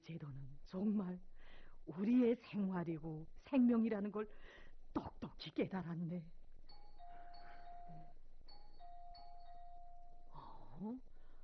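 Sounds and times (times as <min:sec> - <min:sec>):
speech: 0:00.0 - 0:06.4, 0:10.8 - 0:11.1
electronic doorbell chime ringing: 0:06.7 - 0:10.7.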